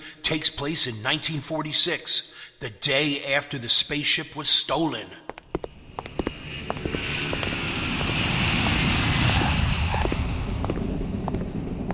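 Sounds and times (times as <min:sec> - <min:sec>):
speech: 0:00.2 - 0:05.3
propeller airplane engine droning as the aircraft approaches: 0:05.4 - 0:11.9
whooshing wind noise: 0:05.6 - 0:11.9.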